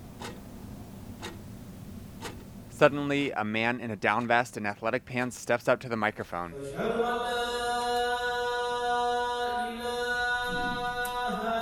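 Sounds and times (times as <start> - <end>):
analog wall clock ticking in a community center sanctuary: 0.0 - 2.5
low steady room hum: 0.0 - 11.6
speech: 2.8 - 7.4.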